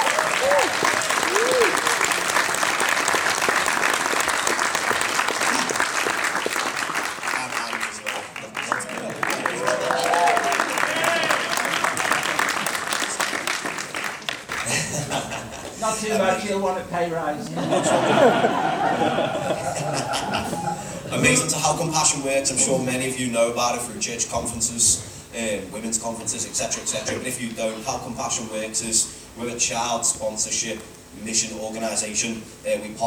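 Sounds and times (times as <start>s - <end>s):
church congregation applauding: 0.0s - 15.0s
people chuckling: 14.5s - 15.8s, 17.5s - 21.3s
speech: 16.8s - 33.0s.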